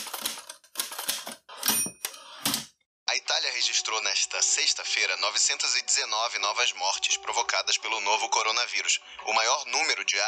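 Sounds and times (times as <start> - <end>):
loud typewriter keys clacking: 0.0 - 2.7
speech: 3.3 - 10.2.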